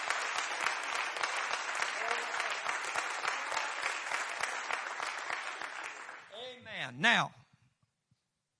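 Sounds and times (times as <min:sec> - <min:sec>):
audience applause after a prayer: 0:00.0 - 0:06.6
speech: 0:06.9 - 0:07.4.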